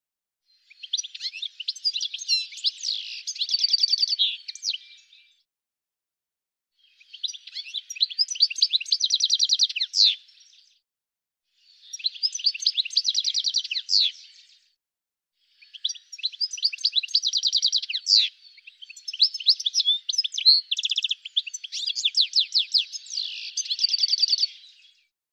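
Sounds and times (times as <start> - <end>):
bird chirping with sharp high tweets and rapid rattling trills: 0.7 - 5.2, 6.8 - 10.2, 11.7 - 14.4, 15.6 - 24.7.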